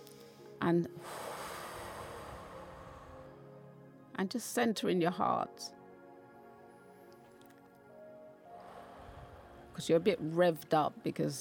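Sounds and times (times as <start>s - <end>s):
deep breath in through the nose during a guided relaxation session: 0.1s - 3.5s, 8.5s - 9.8s
speech: 0.6s - 1.2s, 4.2s - 5.8s, 9.8s - 11.3s.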